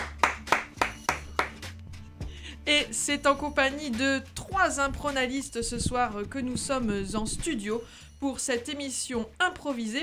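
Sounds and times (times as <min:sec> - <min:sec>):
handful of people clapping their hands in a quick steady rhythm: 0:00.0 - 0:01.7
speech: 0:02.7 - 0:10.0.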